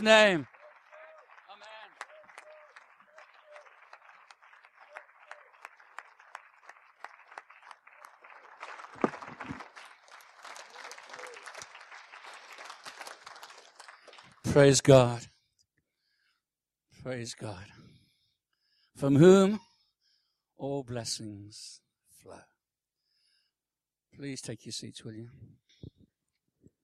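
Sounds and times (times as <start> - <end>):
speech: 0.0 - 0.5, 14.6 - 15.3, 17.0 - 17.8, 19.0 - 19.7, 20.6 - 22.5, 24.2 - 26.0
audience applauding in Northampton: 0.0 - 15.2.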